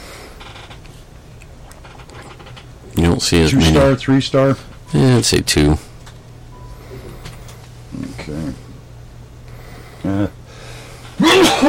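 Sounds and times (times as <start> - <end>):
speech: 3.1 - 5.9
loud sneeze: 11.2 - 11.6.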